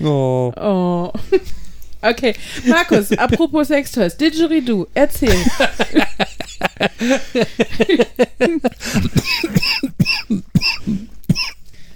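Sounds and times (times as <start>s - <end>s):
speech: 0.0s - 11.1s
laughter: 2.6s - 3.5s, 5.2s - 9.2s
harsh coughing: 6.9s - 11.6s
throat clearing: 8.8s - 11.6s.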